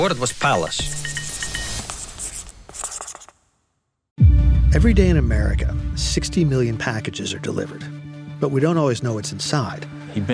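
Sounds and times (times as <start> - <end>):
speech: 0.0 - 1.2, 4.7 - 10.3
pen scratching across paper: 2.1 - 3.3.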